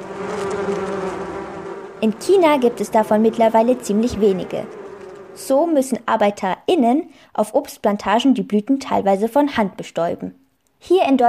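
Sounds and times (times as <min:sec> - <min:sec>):
bee buzzing: 0:00.0 - 0:06.4
speech: 0:02.0 - 0:04.8, 0:05.4 - 0:11.2.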